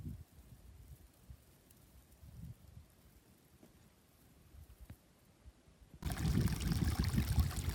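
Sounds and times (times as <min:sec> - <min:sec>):
water trickling and gurgling over rocks in a small mountain stream: 0:06.0 - 0:07.7.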